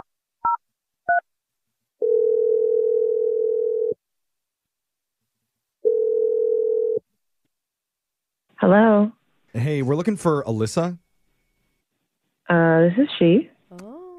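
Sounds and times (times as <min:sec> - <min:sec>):
long steady phone tone: 0:02.0 - 0:04.0, 0:05.8 - 0:07.0
speech: 0:08.7 - 0:11.0, 0:12.5 - 0:13.5.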